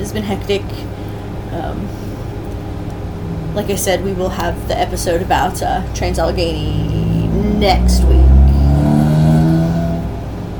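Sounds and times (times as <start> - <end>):
speech: 0.0 - 2.1, 3.6 - 7.0, 7.6 - 9.0
loud car engine revving and roaring past: 2.2 - 10.5.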